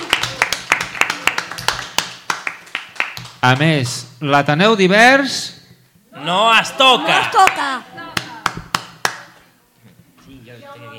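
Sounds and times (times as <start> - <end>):
small group clapping in a steady rhythm: 0.0 - 4.0, 7.2 - 9.5
speech: 3.4 - 5.6, 6.2 - 8.0.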